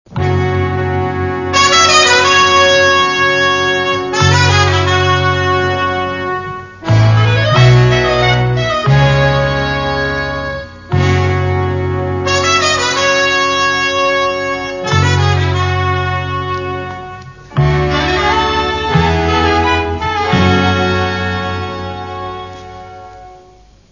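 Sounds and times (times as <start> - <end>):
music: 0.1 - 23.9.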